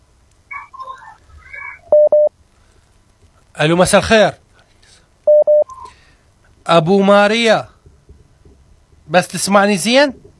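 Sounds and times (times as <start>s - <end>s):
telephone dialing tones placing a phone-in call: 1.9s - 2.3s, 5.3s - 5.8s
speech: 3.6s - 4.4s, 6.7s - 7.7s, 9.1s - 10.2s.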